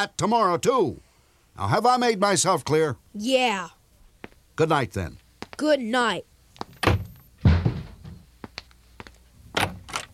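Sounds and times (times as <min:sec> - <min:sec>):
speech: 0:00.0 - 0:03.8, 0:04.6 - 0:06.3
shoe thrown against a door thudding: 0:06.8 - 0:08.2.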